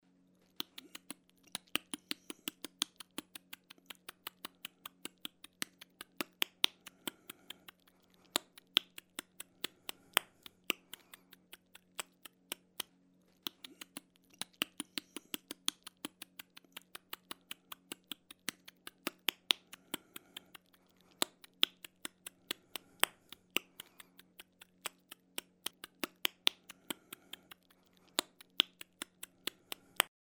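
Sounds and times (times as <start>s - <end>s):
buck deer clicking teeth: 0.5s - 30.1s.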